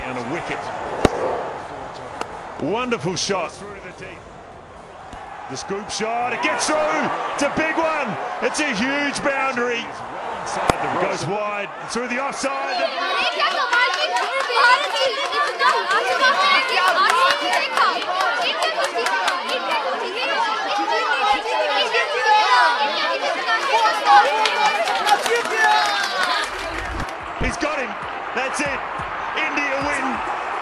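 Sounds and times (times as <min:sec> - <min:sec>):
stadium crowd chatter at a cricket match: 0:00.0 - 0:30.6
sharp thuds: 0:00.9 - 0:01.5
people clapping in a stadium: 0:12.9 - 0:21.0, 0:23.0 - 0:30.6.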